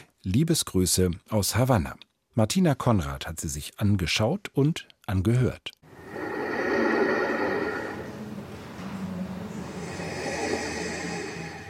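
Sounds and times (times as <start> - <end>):
speech: 0.2 - 5.8
person breathing: 5.9 - 11.6.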